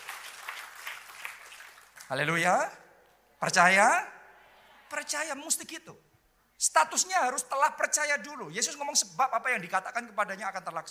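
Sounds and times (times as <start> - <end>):
large crowd applauding: 0.0 - 2.1
speech: 2.1 - 2.8, 3.4 - 4.2, 4.9 - 10.9.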